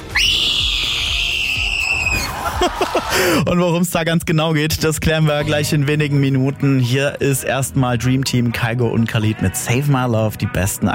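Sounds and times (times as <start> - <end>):
loud piercing high-pitched scream from a television game show: 0.0 - 3.0
laughter: 2.1 - 3.5
speech: 2.6 - 10.9.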